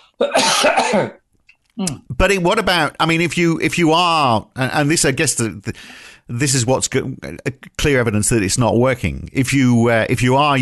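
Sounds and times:
person coughing: 0.2s - 1.2s
speech: 0.2s - 1.2s, 1.8s - 10.5s.

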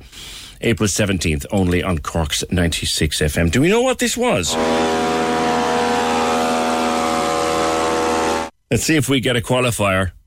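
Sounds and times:
speech: 0.6s - 5.0s, 8.7s - 10.2s
small two-stroke leaf blower engine at full throttle: 4.5s - 8.5s.

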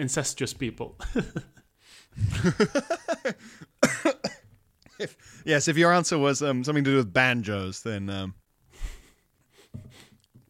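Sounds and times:
speech: 0.0s - 3.7s, 5.0s - 8.4s
person coughing after drinking coffee with limescale: 2.3s - 4.5s.

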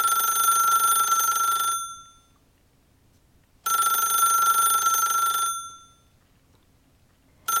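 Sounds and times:
toy rotary phone ringing: 0.0s - 2.3s, 3.7s - 6.1s.

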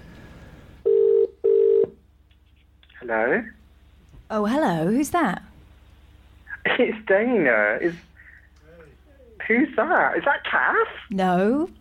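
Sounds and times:
telephone ringing in the classic double pattern: 0.8s - 2.0s
speech: 3.1s - 3.6s, 4.3s - 5.5s, 6.7s - 8.1s, 9.5s - 11.8s.

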